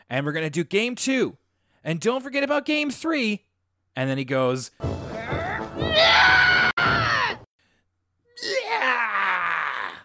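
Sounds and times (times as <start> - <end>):
speech: 0.1 - 5.0
excited yelling scream: 5.3 - 7.4, 8.4 - 10.0.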